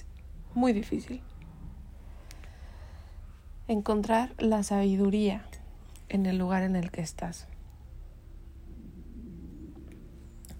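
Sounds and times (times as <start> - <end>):
speech: 0.6 - 1.3, 3.7 - 7.5
stomach growling: 1.2 - 2.0, 8.2 - 10.5.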